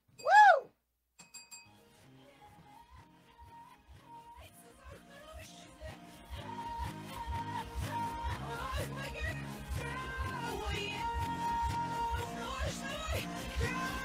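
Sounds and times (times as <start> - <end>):
contestant hitting a game bell in a song-guessing quiz: 1.2 - 1.8
pop song with a steady thumping beat: 2.1 - 14.0.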